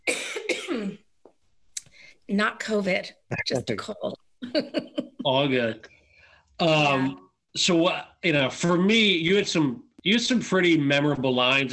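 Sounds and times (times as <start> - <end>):
person coughing harshly: 0.0 - 1.0
speech: 2.3 - 5.9, 6.6 - 11.7
faint short throat sound: 3.3 - 3.8
quiet breath: 5.9 - 6.6.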